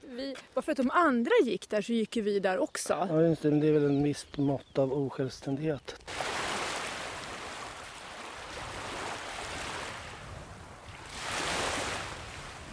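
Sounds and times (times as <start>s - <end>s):
speech: 0.1s - 6.2s
sea waves washing onto a small sandy beach: 6.0s - 12.7s.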